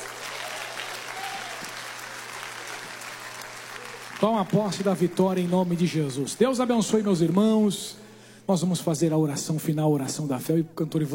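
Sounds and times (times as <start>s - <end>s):
audience applauding: 0.0s - 7.8s
speech: 4.2s - 11.1s.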